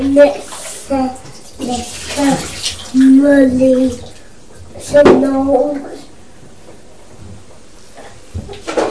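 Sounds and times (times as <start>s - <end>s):
young child talking: 0.0s - 4.1s, 4.8s - 6.2s
water sloshing and splashing in a bathtub with bubbles: 0.0s - 6.0s.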